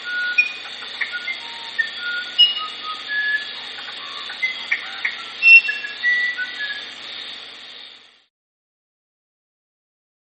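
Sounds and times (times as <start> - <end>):
musician wren song: 0.0 - 6.9
steady hissing background: 0.0 - 8.3.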